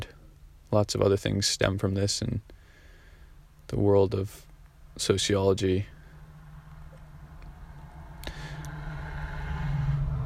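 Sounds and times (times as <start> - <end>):
speech: 0.7 - 2.6, 3.7 - 6.0
low rumble of car traffic going by outdoors: 4.5 - 10.2.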